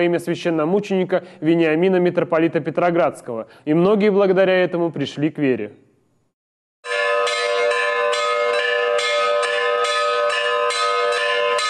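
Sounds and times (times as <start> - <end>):
speech: 0.0 - 5.8
church bells pealing at a correctional colony church for its patronal feast: 6.8 - 11.6.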